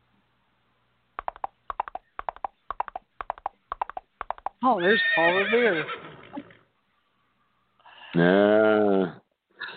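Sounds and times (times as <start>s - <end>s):
horse hooves clip-clopping: 1.2s - 4.6s
speech: 4.6s - 6.1s, 8.2s - 9.2s.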